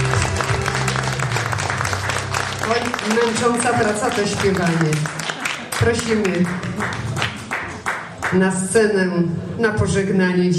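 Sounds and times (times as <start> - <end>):
audience applause welcoming a singer onto the stage: 0.0 - 8.3
speech: 2.7 - 7.1, 8.3 - 10.5.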